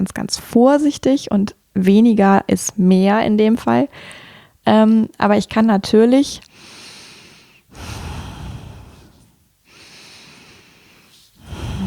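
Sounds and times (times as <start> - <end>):
speech: 0.0 - 6.7
fast forceful deep breathing from a breathing exercise: 6.5 - 11.8.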